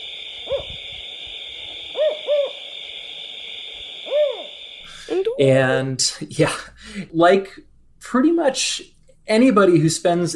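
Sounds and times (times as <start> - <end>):
California spotted owl hooting in the Sierra Nevada California: 0.0 - 5.2
steady high insect drone at night: 0.0 - 5.7
speech: 5.4 - 10.3.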